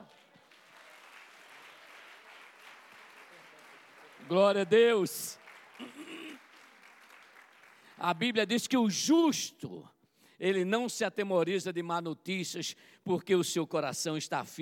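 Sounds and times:
audience applauding: 0:00.0 - 0:08.4
speech: 0:04.2 - 0:06.2, 0:08.0 - 0:14.6.

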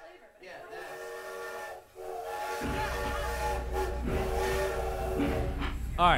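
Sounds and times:
train whistle: 0:00.6 - 0:06.0
deep rumble of a rolling train: 0:02.6 - 0:06.1
speech: 0:06.0 - 0:06.1.

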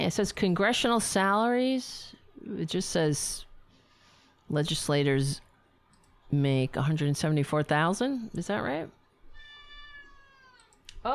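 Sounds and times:
speech: 0:00.0 - 0:03.5, 0:04.5 - 0:05.4, 0:06.3 - 0:09.0
cat screaming and meowing: 0:09.4 - 0:10.7.

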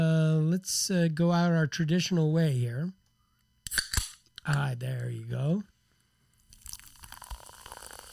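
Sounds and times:
speech: 0:00.6 - 0:03.0, 0:04.4 - 0:05.7
beer being poured: 0:06.4 - 0:08.1.

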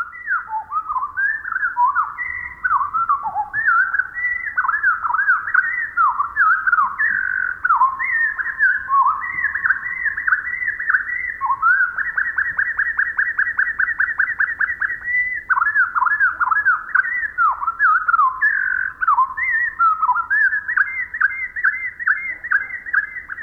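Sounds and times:
Pacific wren song slowed to quarter speed: 0:00.0 - 0:23.4.

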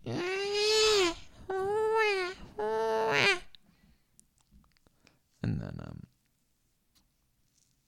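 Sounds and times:
voice imitating baby crying: 0:00.0 - 0:03.5.

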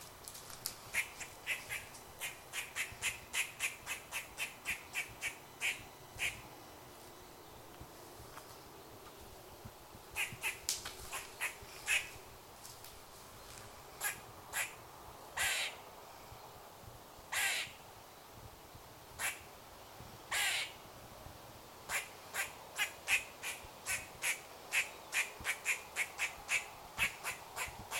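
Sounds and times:
grey squirrel barking chucks in woodland on farmland in lowland England: 0:00.9 - 0:06.4, 0:10.2 - 0:12.1, 0:14.0 - 0:14.8, 0:17.3 - 0:17.8, 0:20.3 - 0:20.7, 0:21.9 - 0:27.9.

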